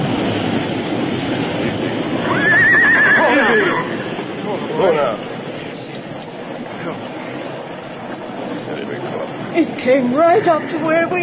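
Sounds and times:
rushing noise: 0.0s - 11.2s
horse whinnying while standing in floodwater: 2.1s - 4.2s
speech: 9.9s - 11.2s.

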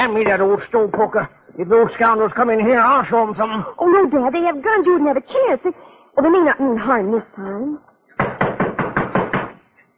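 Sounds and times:
speech: 0.0s - 7.9s
heavy pounding on a door: 8.2s - 9.6s.

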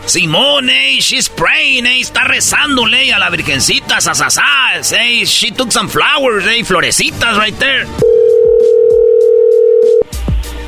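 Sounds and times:
speech: 0.1s - 8.2s
telephone ringback tone on an unanswered outgoing call: 8.0s - 10.1s.

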